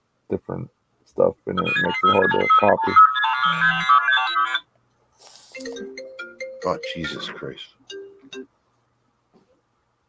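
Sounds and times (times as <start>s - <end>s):
speech: 0.3s - 4.0s, 6.6s - 8.5s
phone ringtone playing a melodic electronic tune: 1.6s - 4.7s, 5.6s - 8.5s.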